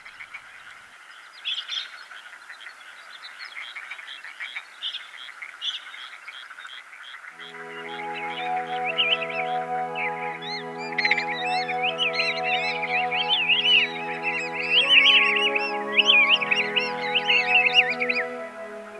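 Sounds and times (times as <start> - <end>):
flock of migrating Pacific golden plovers calling in a rice field in Matsudo Japan: 7.4 - 18.9.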